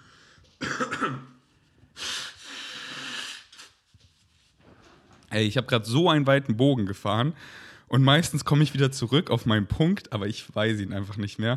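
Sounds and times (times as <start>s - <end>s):
speech: 1.0s - 1.3s, 5.4s - 11.5s
sniffly breathing: 2.0s - 3.9s
person blowing nose: 2.0s - 4.2s.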